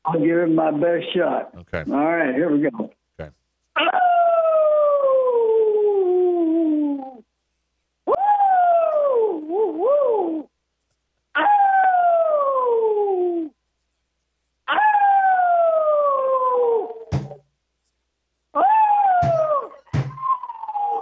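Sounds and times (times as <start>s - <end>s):
speech: 0.0s - 4.2s
dog howling: 3.8s - 7.2s, 8.1s - 10.5s, 11.4s - 13.5s, 14.7s - 17.4s, 18.6s - 21.0s.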